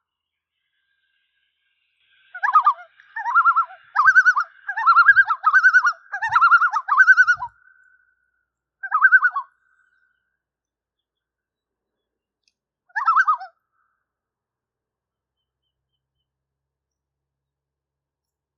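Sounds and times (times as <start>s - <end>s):
common loon giving quavering laughing tremolo calls: 2.3s - 8.0s, 8.8s - 9.5s, 12.9s - 13.5s.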